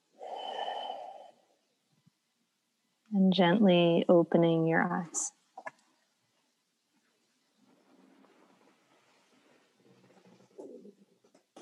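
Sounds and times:
deep slow breath in and out during a relaxation exercise: 0.0 - 1.7
speech: 3.2 - 5.4.

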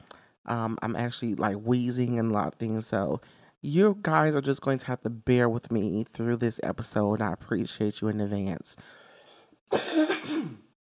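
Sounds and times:
speech: 0.5 - 9.0
faint breath: 3.2 - 3.6, 8.8 - 9.6
raspy throat clearing with a rough cough-like burst: 9.7 - 10.7.

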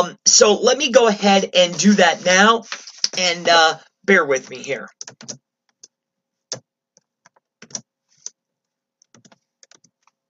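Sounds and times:
speech: 0.0 - 5.4
typing HTML code on a computer keyboard: 4.9 - 5.9, 6.5 - 7.8, 9.0 - 10.2.

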